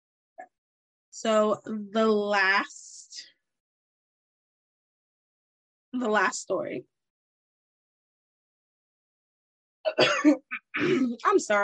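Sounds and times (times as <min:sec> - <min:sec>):
speech: 0:01.2 - 0:03.3, 0:06.0 - 0:06.9, 0:09.9 - 0:11.6
person coughing harshly: 0:09.9 - 0:11.2.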